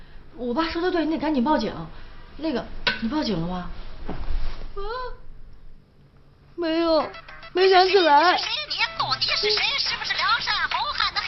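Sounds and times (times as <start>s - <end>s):
speech: 0.4s - 5.2s, 6.6s - 10.9s
mobile phone ringing with an incoming call: 7.0s - 9.9s.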